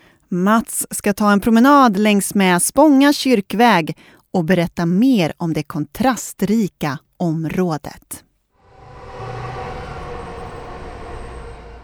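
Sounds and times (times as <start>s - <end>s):
speech: 0.3s - 8.3s
commuter train rumbling roar at a station: 8.6s - 11.8s
faint high whine of a commuter train: 8.6s - 11.8s.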